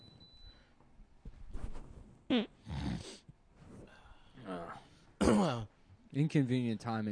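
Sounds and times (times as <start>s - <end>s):
speech: 2.3s - 2.8s, 6.1s - 7.0s
loud nasal snorts: 2.3s - 3.2s
rough throat clearing: 5.2s - 5.7s.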